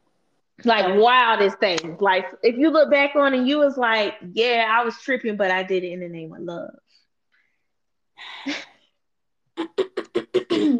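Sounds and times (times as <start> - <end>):
speech: 0.6 - 6.8, 8.2 - 8.7
rough noisy throat clearing: 9.6 - 10.7.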